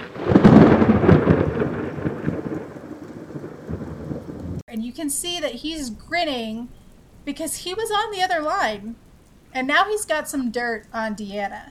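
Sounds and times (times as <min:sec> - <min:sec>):
thunder crack rolling into a long rumble: 0:00.0 - 0:04.6
steady rain hissing: 0:00.0 - 0:11.6
speech: 0:04.8 - 0:11.6.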